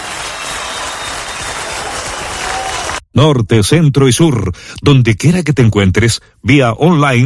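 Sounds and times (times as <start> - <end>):
audience clapping: 0.0 - 3.0
speech: 3.2 - 7.2.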